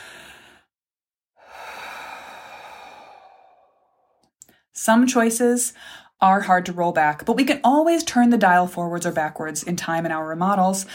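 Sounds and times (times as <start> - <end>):
deep breath taken deliberately: 0.0 - 0.7, 1.4 - 4.7, 5.8 - 6.2
speech: 4.8 - 10.9.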